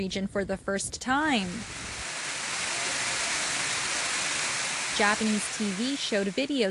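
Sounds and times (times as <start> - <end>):
speech: 0.0 - 2.0, 5.0 - 6.6
heavy torrential rain: 1.3 - 6.6.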